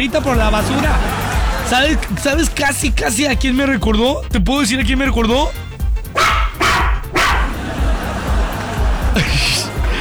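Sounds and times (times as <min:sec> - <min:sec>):
low murmur of voices: 0:00.0 - 0:02.6, 0:06.1 - 0:09.9
speech: 0:00.0 - 0:05.6
laughter: 0:00.0 - 0:09.9
small female chihuahua yapping barks: 0:06.1 - 0:07.6.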